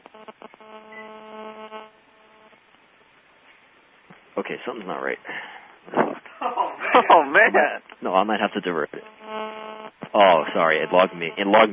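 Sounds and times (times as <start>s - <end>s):
steady slightly buzzy phone tone: 0.0s - 2.6s, 9.0s - 11.7s
speech: 4.4s - 9.2s, 10.1s - 11.7s.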